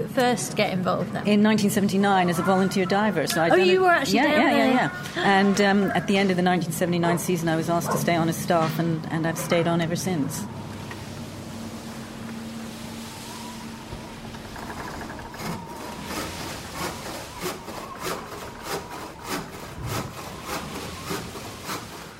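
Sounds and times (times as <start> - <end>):
speech: 0.2 - 10.6
low steady rumble: 1.1 - 22.1
carpenter's handsaw cutting wood: 15.3 - 22.1.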